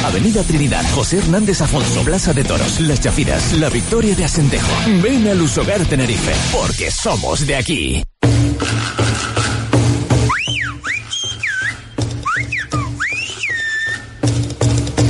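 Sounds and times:
speech: 0.1 - 9.4
sharp human whistling in the style of Silbo Gomero whistled language: 10.2 - 14.4.

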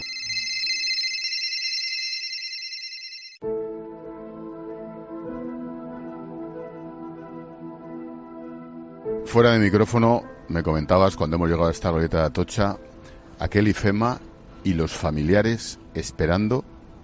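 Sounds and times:
shrill high electronic mobile phone ringtone trill: 0.0 - 3.4
speech: 9.3 - 16.7.

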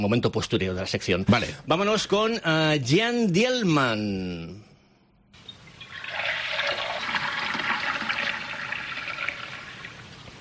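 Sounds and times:
speech: 0.0 - 4.6
bucket of water being poured out: 5.4 - 10.3.

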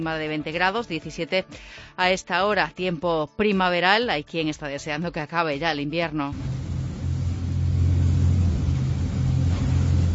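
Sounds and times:
speech: 0.0 - 6.6
pilot motorboat engine droning: 6.4 - 10.1.

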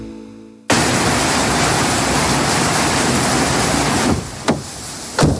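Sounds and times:
swollen river rushing after a storm: 0.7 - 5.2.

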